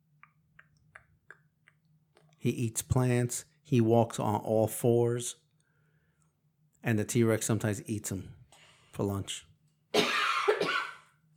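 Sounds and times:
speech: 2.4 - 5.4, 6.8 - 8.4, 9.0 - 9.5
harsh cough: 9.9 - 11.1.

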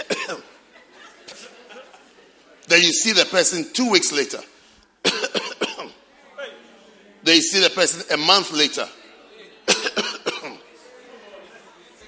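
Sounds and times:
man imitating a dry cough: 0.0 - 0.6, 5.0 - 6.0, 9.7 - 10.6
speech: 0.3 - 0.6, 2.7 - 4.6, 7.3 - 9.0
laughter: 0.4 - 2.5.

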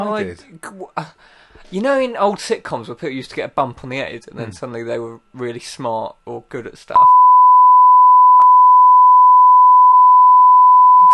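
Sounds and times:
speech: 0.0 - 7.2
censor bleep tone for covering swearing: 7.0 - 11.1.

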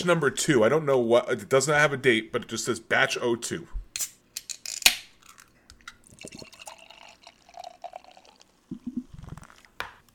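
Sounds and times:
speech: 0.0 - 4.1
beer being poured into a glass: 6.0 - 9.7.

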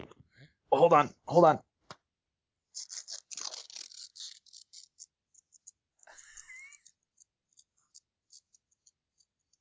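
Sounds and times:
speech: 0.8 - 1.7
small piece of paper being torn off: 2.8 - 5.0
light crinkles and ticks: 2.8 - 9.6.

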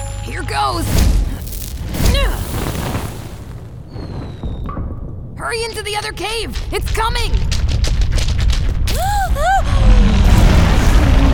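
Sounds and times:
speech: 0.3 - 1.2, 5.4 - 7.6, 9.0 - 9.9
booming burst from a fireball thrown down a tunnel: 0.9 - 11.3.

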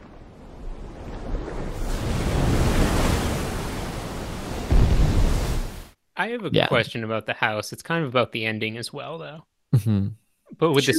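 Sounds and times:
ocean waves crashing on shore: 0.0 - 6.0
speech: 6.2 - 10.9.

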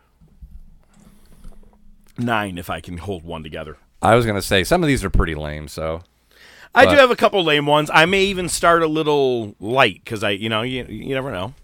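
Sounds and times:
person sipping water: 0.2 - 2.2
speech: 2.2 - 11.6.

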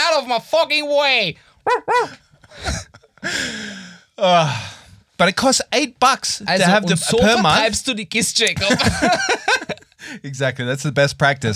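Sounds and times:
speech: 0.2 - 11.5
person imitating dog barking: 1.6 - 2.2
laughter: 6.6 - 7.8, 8.5 - 10.0.

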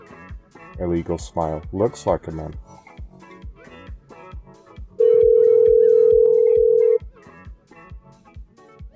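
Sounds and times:
speech: 0.8 - 2.8
electronic ringback tone of an outgoing phone call: 5.0 - 7.0.

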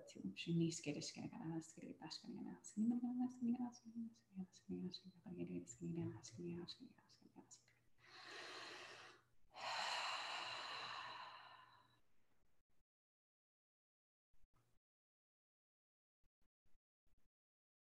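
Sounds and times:
speech: 0.0 - 8.5
long breathy yawns: 8.3 - 11.9.

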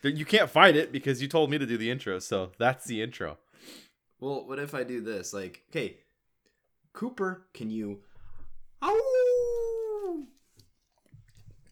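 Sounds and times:
speech: 0.0 - 6.0, 7.0 - 8.1
dog howling whine on command: 8.8 - 10.3.

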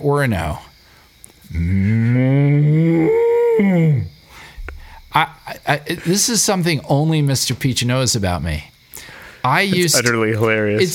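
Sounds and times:
speech: 0.0 - 0.7, 1.5 - 4.1, 5.2 - 8.7, 9.4 - 10.9
person imitating a cow mooing: 1.5 - 4.1.

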